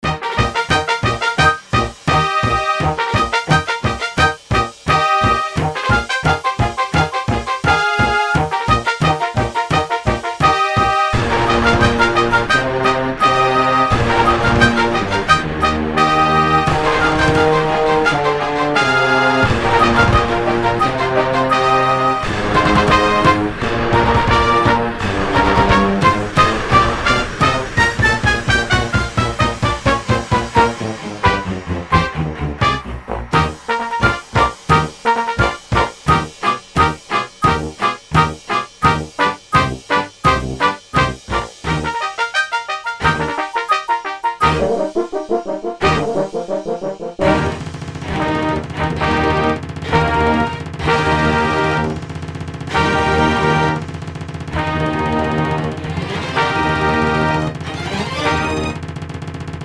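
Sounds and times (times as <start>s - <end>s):
strings: 0.0s - 52.0s, 52.7s - 53.9s, 54.5s - 58.8s
brass: 0.0s - 58.9s
timpani: 0.0s - 59.6s.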